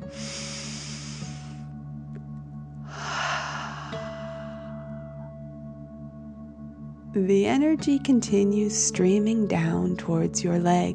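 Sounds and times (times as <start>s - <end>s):
deep breath in through the nose: 0.0s - 1.6s, 2.9s - 4.8s
forceful exhale through the mouth: 0.0s - 1.6s, 2.9s - 4.8s
soft music: 0.0s - 10.9s
speech: 7.2s - 10.9s.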